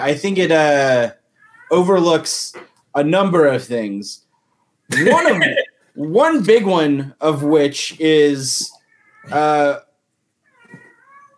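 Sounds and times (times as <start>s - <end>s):
speech: 0.0s - 4.2s, 4.9s - 9.9s
laughter: 4.9s - 5.7s
cat meowing: 10.5s - 11.3s.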